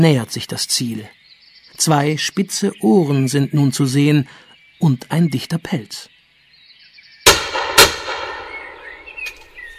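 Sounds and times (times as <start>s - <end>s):
speech: 0.0s - 1.2s, 1.8s - 6.1s
hunting rifle shots: 7.3s - 9.1s
fainter gunshot report: 7.3s - 9.2s.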